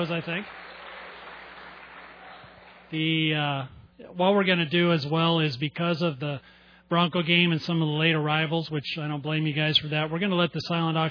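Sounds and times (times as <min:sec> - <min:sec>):
speech: 0:00.0 - 0:00.7, 0:02.9 - 0:11.0
crowd applauding and cheering: 0:00.0 - 0:03.2.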